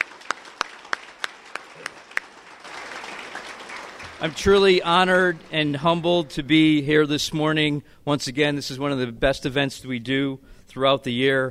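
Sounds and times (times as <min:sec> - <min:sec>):
audience applauding veterans at an event: 0:00.0 - 0:06.8
speech: 0:04.2 - 0:11.4.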